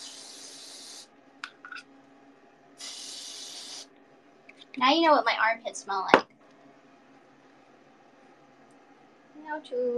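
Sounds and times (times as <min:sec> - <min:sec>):
aerosol deodorant spray hissing: 0:00.0 - 0:01.1, 0:02.8 - 0:03.9
speech: 0:04.8 - 0:06.3, 0:09.5 - 0:09.9.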